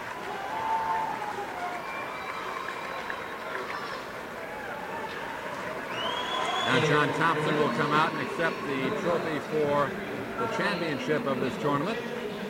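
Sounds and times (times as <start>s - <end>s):
large arena crowd roaring at a tournament trophy presentation in Florida: 0.0s - 12.4s
speech: 6.7s - 12.1s
fans in the back stands chanting a team chant: 6.7s - 12.4s.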